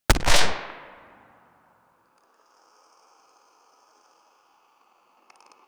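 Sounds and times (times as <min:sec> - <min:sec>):
realistic gunshot: 0:00.1 - 0:01.3.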